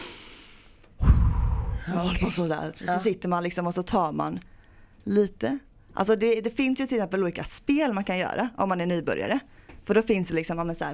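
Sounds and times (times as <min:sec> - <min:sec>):
deep yoga breath in through nose: 0:00.0 - 0:01.8
speech: 0:01.9 - 0:10.9.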